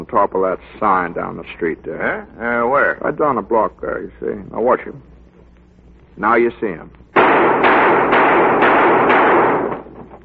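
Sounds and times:
speech: 0.0 - 5.1, 6.2 - 8.9
handgun gunshots fired at knobs on a street sign: 7.2 - 10.0.

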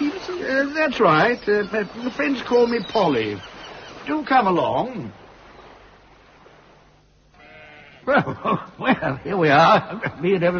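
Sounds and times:
outdoor hiss: 0.0 - 10.5
speech: 0.4 - 5.2, 8.0 - 10.5
sheep bleating: 7.3 - 8.1
laughter: 8.1 - 10.5.

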